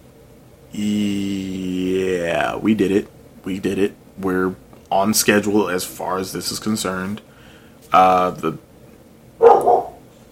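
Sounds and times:
speech: 0.7 - 1.6, 2.3 - 7.3, 7.9 - 8.7
dog barking: 9.4 - 10.0.

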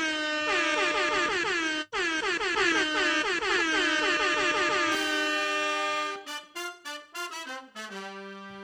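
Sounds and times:
air horn sound effect blasts: 0.0 - 8.6.

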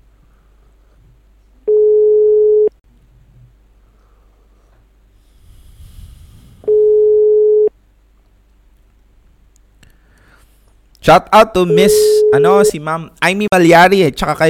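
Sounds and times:
ringback tone of an unanswered phone call: 1.7 - 2.7, 6.7 - 7.7, 11.7 - 12.8
faint breathing-like noise: 3.0 - 7.0, 9.8 - 10.8
speech: 11.1 - 14.4.

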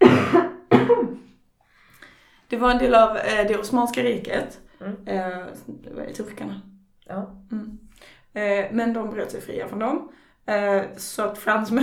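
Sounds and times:
person coughing: 0.0 - 1.3
speech: 2.5 - 7.8, 8.4 - 11.8.

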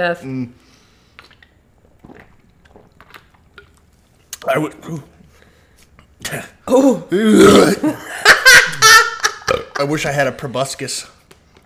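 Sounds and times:
speech: 0.0 - 0.6, 4.4 - 5.2, 6.2 - 8.1, 9.8 - 11.2
loud drawn-out croaky burp: 7.2 - 8.0, 9.4 - 9.8
laughter: 7.8 - 10.0.

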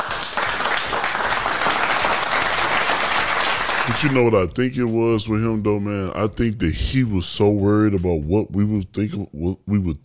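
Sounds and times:
burst of applause with many hands clapping: 0.0 - 4.4
speech: 4.0 - 10.0.

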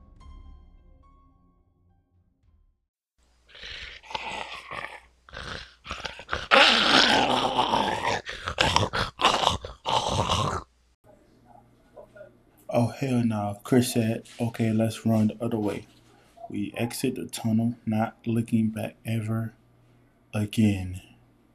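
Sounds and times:
dog growling and snarling in a tunnel: 3.5 - 10.7
speech: 13.0 - 15.9, 16.5 - 19.6, 20.4 - 21.1.

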